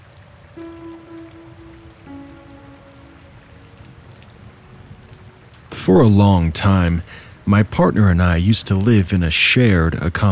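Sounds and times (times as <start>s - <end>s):
rain pattering on a surface: 0.0s - 10.2s
low tonal hum: 0.5s - 5.6s
speech: 5.8s - 10.2s.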